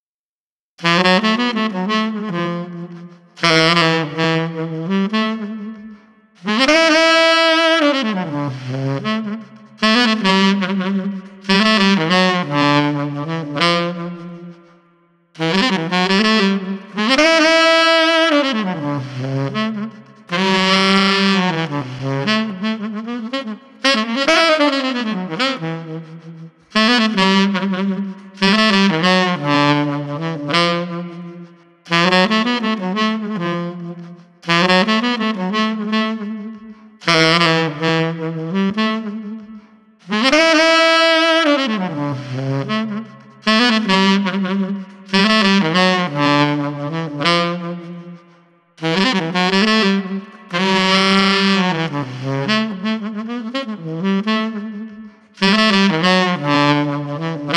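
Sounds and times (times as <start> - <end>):
pensive saxophone: 0.8 - 57.5.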